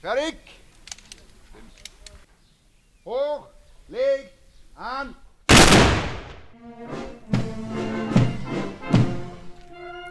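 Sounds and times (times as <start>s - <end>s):
speech: 0.0s - 0.6s
gun salute echoes rolling outdoors: 0.0s - 10.0s
ceremonial gun salute shots: 5.5s - 6.5s.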